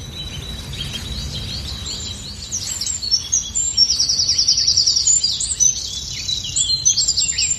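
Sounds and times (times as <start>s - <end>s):
low outdoor rumble: 0.0s - 6.0s
dawn chorus of blackbird, great tit, robin, wren and blackcap singing: 0.0s - 7.5s.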